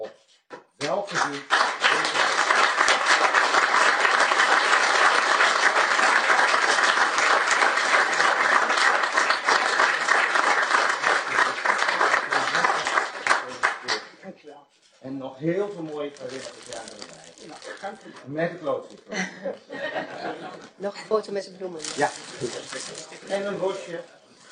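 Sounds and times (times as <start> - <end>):
audience applause: 0.8 - 14.0
speech: 0.9 - 2.2, 15.4 - 19.6, 20.8 - 24.2
laughter: 11.3 - 13.0, 19.1 - 20.8.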